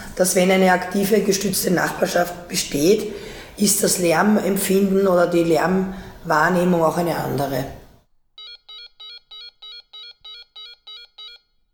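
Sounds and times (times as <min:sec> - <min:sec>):
speech: 0:00.2 - 0:07.8
electronic doorbell ringing: 0:08.4 - 0:11.6.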